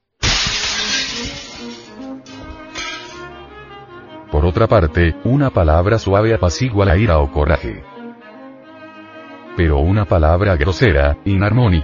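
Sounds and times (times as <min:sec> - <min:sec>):
tinkling scattering glass shards: 0:00.2 - 0:03.2
window glass shattering from a cannon blast: 0:00.2 - 0:03.4
speech: 0:04.4 - 0:08.0, 0:09.6 - 0:11.8.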